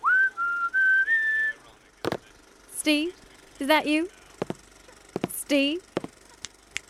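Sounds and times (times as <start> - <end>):
man whistling a short tune: 0.0 - 1.6
speech: 2.8 - 4.2, 5.5 - 5.9.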